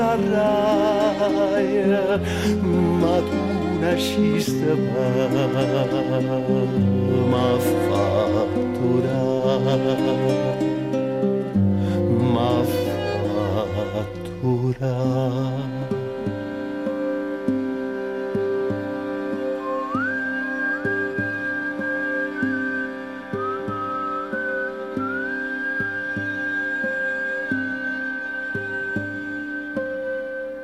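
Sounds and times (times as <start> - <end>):
person whistling a wavering melodic line: 0.0 - 30.6
steady sustained music with regular rhythmic plucks: 0.0 - 30.6
speech: 1.2 - 10.7, 14.0 - 15.7.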